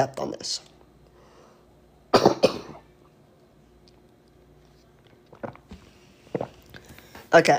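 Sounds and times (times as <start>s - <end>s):
speech: 0.0s - 0.7s, 7.3s - 7.5s
person coughing: 2.1s - 2.9s.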